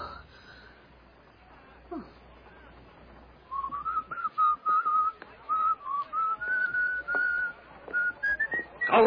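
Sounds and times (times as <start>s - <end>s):
person whistling a cheerful bouncy tune: 3.5s - 8.9s.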